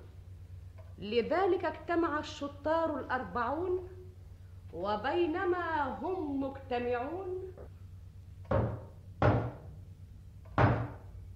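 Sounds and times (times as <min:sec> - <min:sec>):
quiet hum: 0:00.0 - 0:11.3
speech: 0:01.0 - 0:04.0, 0:04.7 - 0:07.6
heavy knocks on a wooden door: 0:08.5 - 0:09.7, 0:10.6 - 0:11.0.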